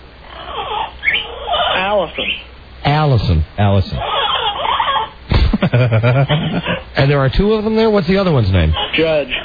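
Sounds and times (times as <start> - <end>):
parrot screeching and squawking: 0.3 - 2.5, 4.0 - 5.2, 8.7 - 9.4
speech: 2.0 - 4.1, 5.6 - 9.4
laughter: 5.3 - 6.9.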